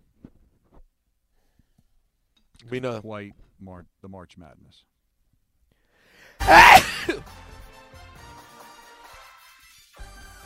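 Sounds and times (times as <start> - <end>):
speech: 2.6 - 4.9, 6.4 - 7.5
single loud sneeze: 6.4 - 7.2.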